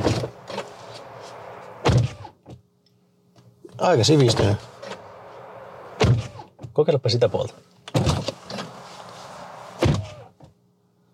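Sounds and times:
car door swung shut with a solid thud: 0.0s - 2.6s, 3.8s - 6.8s, 7.9s - 10.6s
speech: 3.8s - 4.7s, 6.8s - 7.7s.

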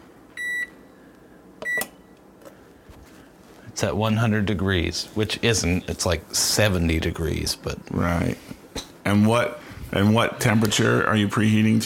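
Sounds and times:
oven beeping as it is started again: 0.3s - 0.8s, 1.6s - 2.2s
speech: 3.8s - 11.8s.

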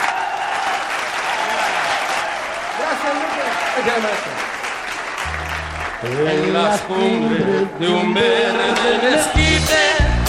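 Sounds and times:
crowd applauding a norteño music singer onto a stage: 0.0s - 7.2s
speech: 3.8s - 4.6s, 6.0s - 10.1s.

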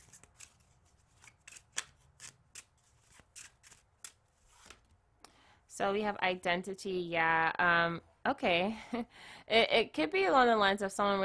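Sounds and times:
oracle deck cards being shuffled and handled: 0.0s - 5.0s
speech: 5.8s - 11.2s.

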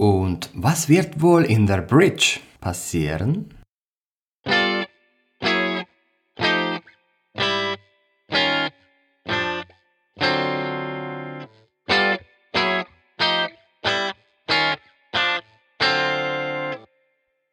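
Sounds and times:
speech: 0.0s - 3.6s
effects-laden electric guitar playing ninth chord stabs: 4.5s - 16.9s.

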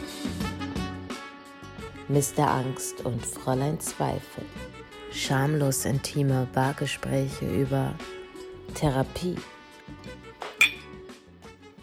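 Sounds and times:
speech: 2.1s - 9.5s
glasses clinking in a toast: 10.5s - 11.0s.

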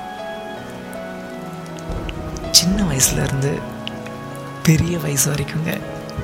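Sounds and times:
steady rain pattering on a hard surface: 0.0s - 6.2s
speech: 2.6s - 3.8s, 4.7s - 6.2s.

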